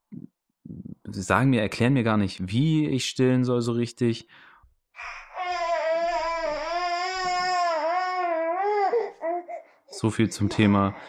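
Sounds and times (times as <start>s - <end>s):
speech: 1.1s - 5.2s, 10.0s - 11.0s
hungry baby crying after waking up: 5.0s - 11.0s.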